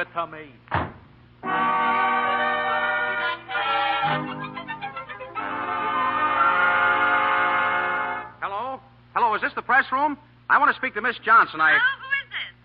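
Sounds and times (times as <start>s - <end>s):
speech: 0.0s - 0.9s, 4.0s - 4.6s, 9.4s - 12.0s
steam train horn blaring: 1.4s - 4.3s, 5.4s - 8.4s.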